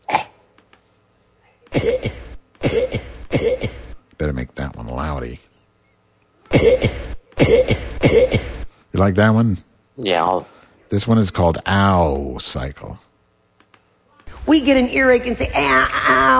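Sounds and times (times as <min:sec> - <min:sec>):
person coughing harshly: 0:01.7 - 0:04.0, 0:06.5 - 0:08.7
speech: 0:01.8 - 0:02.2, 0:04.2 - 0:05.5, 0:06.5 - 0:08.3, 0:09.0 - 0:13.1, 0:14.5 - 0:16.3.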